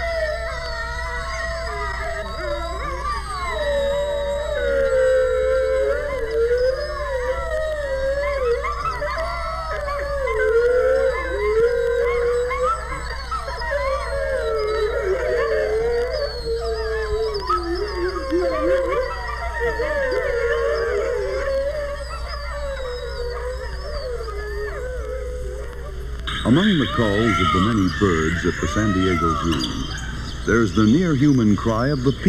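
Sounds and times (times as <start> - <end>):
wolves, coyotes and wild dogs howling together in a canyon: 0.0 - 32.2
speech: 26.6 - 32.2.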